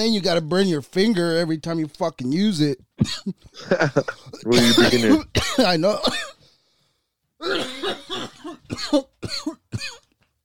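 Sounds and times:
speech: 0:00.0 - 0:06.3, 0:07.4 - 0:10.0
harsh coughing after taking a hit from a rig: 0:03.0 - 0:06.4, 0:07.4 - 0:10.1.

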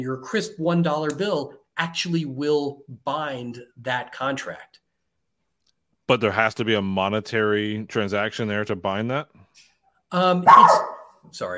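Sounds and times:
speech: 0:00.0 - 0:04.8, 0:06.1 - 0:11.5
small terrier barking: 0:10.4 - 0:11.2.

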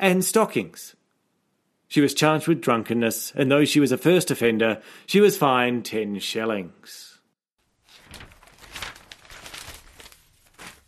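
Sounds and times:
speech: 0:00.0 - 0:01.0, 0:01.9 - 0:07.1
newspaper pages rustling as they are folded shut: 0:07.7 - 0:10.8.

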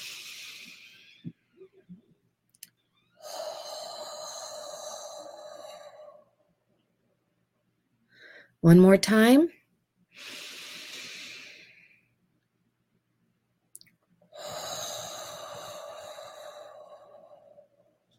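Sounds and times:
slow breathing with long exhale: 0:00.0 - 0:01.4, 0:03.2 - 0:06.4, 0:10.2 - 0:12.0, 0:14.3 - 0:18.0
speech: 0:08.6 - 0:09.6.

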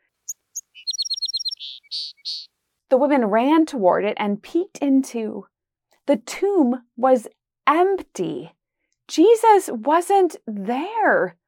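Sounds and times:
small bird tweeting: 0:00.3 - 0:02.5
speech: 0:02.9 - 0:05.5, 0:06.1 - 0:11.4.

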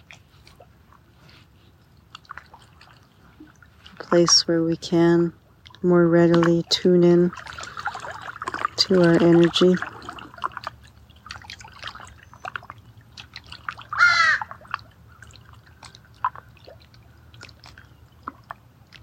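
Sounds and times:
low continuous hum: 0:00.0 - 0:19.0
water trickling and dripping: 0:00.0 - 0:19.0
speech: 0:04.1 - 0:07.5, 0:08.9 - 0:09.9
harsh crow caw: 0:14.0 - 0:14.5.

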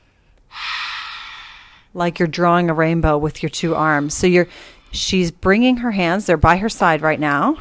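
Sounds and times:
slow deep inhale through the nose: 0:00.5 - 0:02.0
speech: 0:02.0 - 0:07.5.

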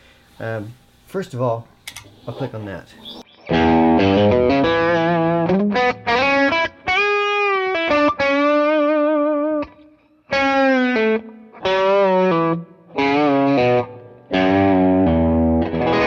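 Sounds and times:
speech: 0:00.4 - 0:03.1
distorted electric guitar through a Plexi Drive pedal playing a country-style lick: 0:03.3 - 0:16.0.

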